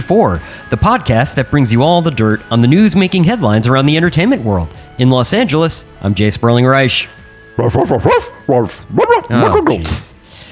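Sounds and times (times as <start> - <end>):
speech: 0.0 - 10.1
dog barking in yappy bursts: 7.6 - 10.0.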